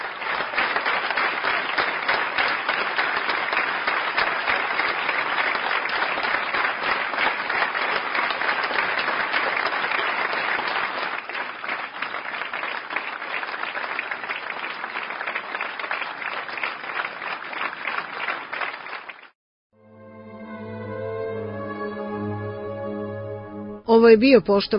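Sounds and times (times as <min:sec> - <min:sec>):
long dense applause from a theatre audience at an actor's memorial: 0:00.0 - 0:19.4
tonal harmonic passage: 0:19.8 - 0:23.9
speech: 0:24.0 - 0:24.7.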